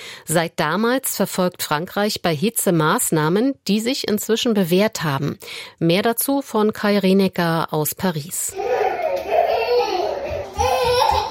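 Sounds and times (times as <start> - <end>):
speech: 0.2 - 8.8
two small children babbling and squealing in a town hall basement room: 8.5 - 11.2.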